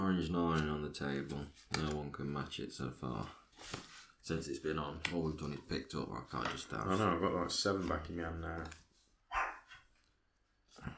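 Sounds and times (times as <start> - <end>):
speech: 0.2 - 8.8, 10.8 - 10.9
neighbor's dog barking: 9.3 - 9.8.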